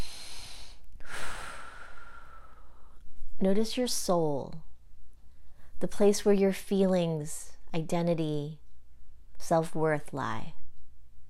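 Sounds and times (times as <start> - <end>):
person taking a deep breath during a guided meditation: 0.0 - 3.0
speech: 3.4 - 4.7, 5.8 - 8.6, 9.4 - 10.6.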